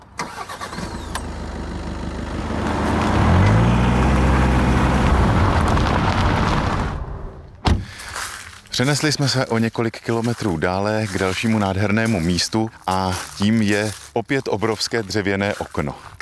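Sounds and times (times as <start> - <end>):
car engine cranking, revving and running: 0.0 - 8.0
brief thump: 7.6 - 8.0
speech: 8.8 - 16.2.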